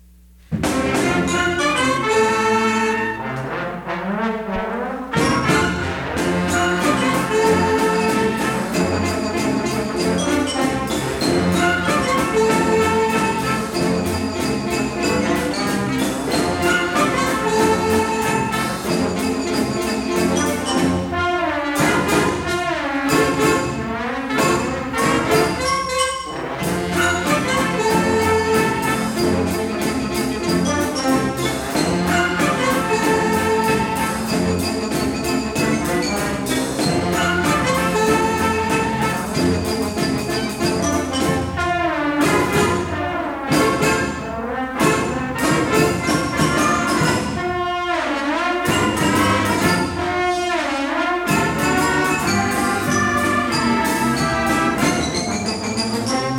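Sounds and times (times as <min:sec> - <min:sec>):
middle school orchestra: 0:00.0 - 0:56.3.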